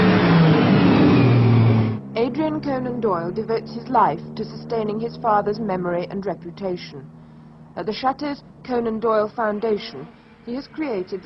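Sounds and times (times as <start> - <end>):
sports car engine revving as the car drives by: 0.0 - 11.2
speech: 2.6 - 7.2, 7.8 - 11.2.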